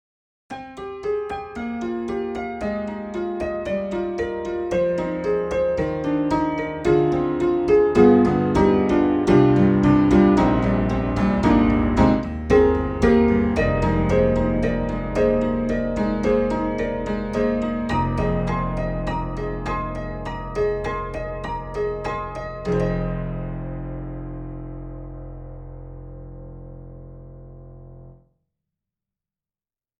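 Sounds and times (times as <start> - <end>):
ancient tack upright piano: 0.5 - 28.2.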